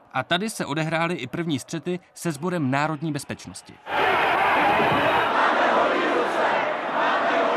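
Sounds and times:
speech: 0.2s - 5.4s
large crowd of student protesters shouting at a riot police cordon: 3.8s - 7.5s.

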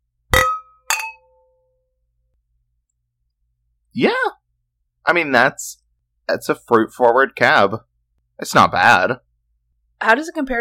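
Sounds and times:
wine glasses clinking in a toast: 0.4s - 1.5s
speech: 4.0s - 4.2s, 5.1s - 9.2s, 10.0s - 10.5s.

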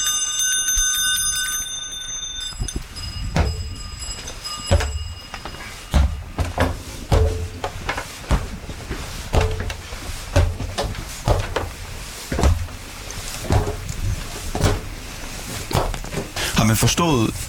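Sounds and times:
sleigh bells on horses pulling a sleigh jingling: 0.0s - 7.6s
sharp knocks and thumps: 2.6s - 16.4s
speech: 16.7s - 17.4s.

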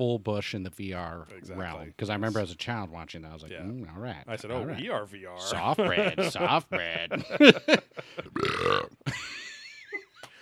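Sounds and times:
speech: 0.0s - 9.3s
laughter: 4.3s - 10.3s
loud burp: 8.3s - 9.0s.

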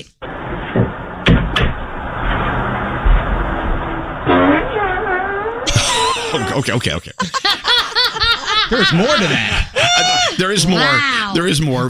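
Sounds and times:
sharp clicks and knocks: 0.6s - 4.3s
man farting outdoors: 4.3s - 6.8s
laughter: 5.7s - 11.5s
speech: 6.4s - 7.6s, 8.7s - 9.7s, 10.4s - 11.8s.

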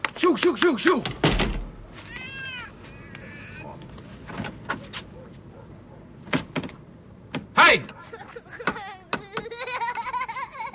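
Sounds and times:
speech: 0.2s - 1.6s
cat meowing: 2.0s - 3.8s
laughter: 8.0s - 10.7s.

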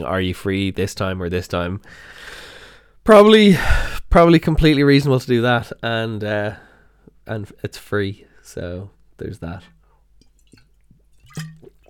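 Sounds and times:
speech: 0.0s - 6.6s, 7.2s - 9.7s
sipping tap water from a glass: 9.7s - 11.8s
faint swallow: 10.3s - 11.8s
small clink of a glass: 11.3s - 11.7s.

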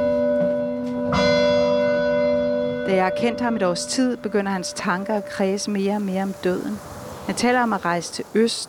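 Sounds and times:
huge church bell strike overhead: 0.0s - 5.4s
speech: 2.9s - 8.6s.

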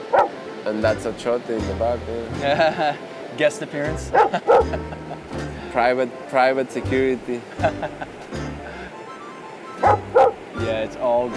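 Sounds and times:
dog barking in the background: 0.1s - 0.3s, 4.1s - 4.8s, 9.8s - 10.4s
speech: 0.7s - 8.2s, 10.9s - 11.3s
laughter: 2.4s - 3.1s, 4.1s - 5.8s, 7.4s - 9.0s.

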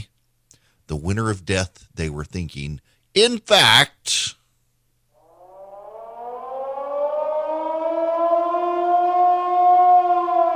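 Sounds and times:
speech: 0.9s - 4.4s
warning sirens wailing: 5.2s - 10.5s.

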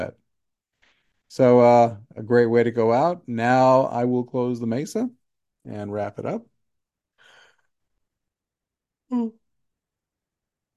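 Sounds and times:
speech: 1.3s - 6.5s, 9.1s - 9.4s
breathy intake and voiced exhale of a yawn: 9.1s - 9.5s.

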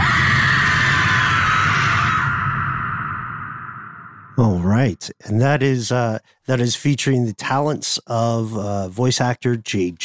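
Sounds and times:
loud sustained scream: 0.0s - 4.1s
low rumbling drone: 2.0s - 5.0s
speech: 4.4s - 10.0s.

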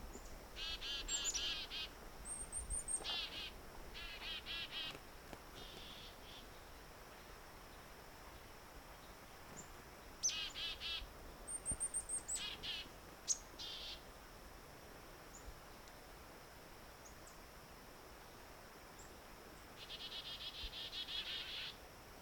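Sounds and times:
steady outdoor hiss: 0.0s - 22.1s
downy woodpecker calls: 0.6s - 5.0s, 5.6s - 6.5s, 10.2s - 11.0s, 19.8s - 21.8s.

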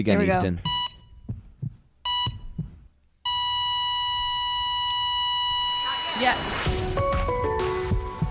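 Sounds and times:
speech: 0.0s - 0.7s, 6.2s - 6.7s
soft heartbeat thumps: 0.4s - 3.0s, 6.7s - 8.3s
short electronic monitor beeps: 0.5s - 1.3s, 2.0s - 2.7s, 3.3s - 6.6s
long steady flatline-style tone: 3.3s - 6.7s.

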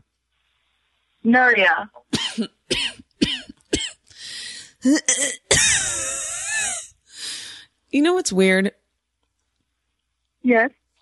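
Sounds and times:
speech: 1.2s - 2.9s, 4.8s - 5.5s, 7.9s - 8.8s, 10.4s - 10.8s
person coughing: 2.1s - 4.0s, 4.8s - 6.9s
wheezy, whining breath: 4.1s - 4.8s, 7.1s - 7.7s.

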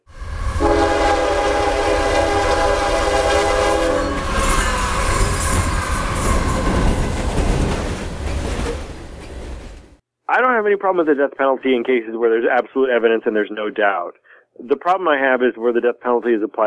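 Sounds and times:
heavy train rumbling on rails: 0.0s - 10.0s
train horn blast: 0.1s - 6.7s
speech: 10.7s - 16.6s.

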